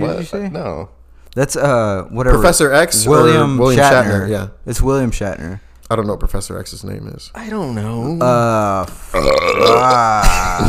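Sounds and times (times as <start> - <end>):
speech: 0.1 - 10.6
loud drawn-out croaky burp: 9.1 - 10.6.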